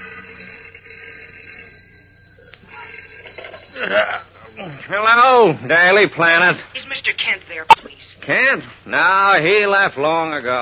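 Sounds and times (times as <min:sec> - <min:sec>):
old-fashioned telephone ringing: 0:00.0 - 0:07.8
speech: 0:03.8 - 0:10.6.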